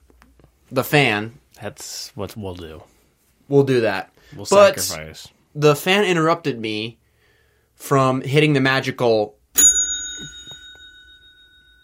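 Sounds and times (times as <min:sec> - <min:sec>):
speech: 0:00.7 - 0:07.0, 0:07.8 - 0:09.4
bell struck once: 0:09.6 - 0:11.8.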